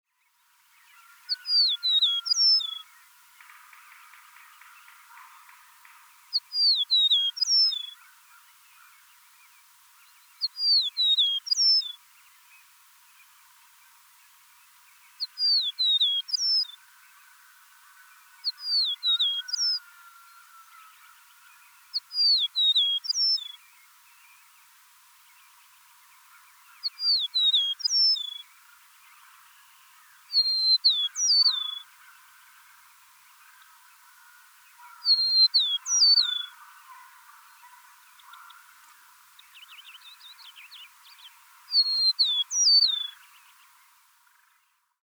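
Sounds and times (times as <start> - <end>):
Eastern Meadowlark singing: 0.9 - 3.1, 6.3 - 17.1, 18.2 - 32.2, 34.7 - 36.6, 39.3 - 43.8.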